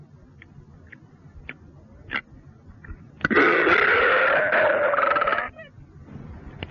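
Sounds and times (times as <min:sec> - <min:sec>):
long loud belch: 0:03.2 - 0:05.5.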